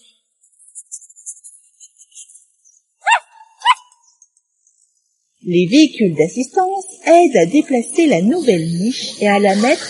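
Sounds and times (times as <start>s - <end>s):
small dog giving sharp high-pitched barks: 3.0s - 4.0s
speech: 5.4s - 9.8s.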